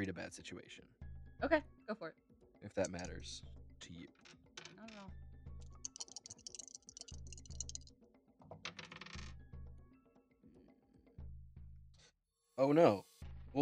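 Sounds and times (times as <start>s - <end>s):
speech: 0.0s - 5.2s, 12.6s - 13.5s
dice clattering across a hard tabletop: 5.8s - 7.9s, 8.7s - 9.3s.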